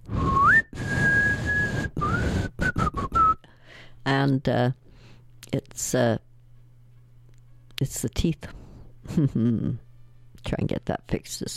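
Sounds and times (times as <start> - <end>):
person whistling a short tune: 0.1 - 3.5
speech: 4.0 - 4.8, 5.5 - 6.3, 7.8 - 9.8, 10.4 - 11.5.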